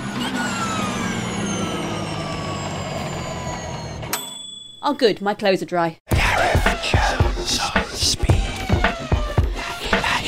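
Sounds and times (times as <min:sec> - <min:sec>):
Formula E electric race car whining: 0:00.0 - 0:04.1, 0:08.3 - 0:09.5
speech: 0:04.8 - 0:07.6.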